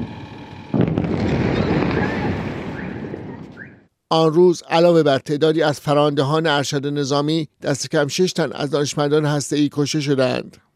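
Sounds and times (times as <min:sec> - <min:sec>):
loud bomb blast with sustained roar and rumble: 0:00.0 - 0:03.6
speech: 0:04.1 - 0:10.7.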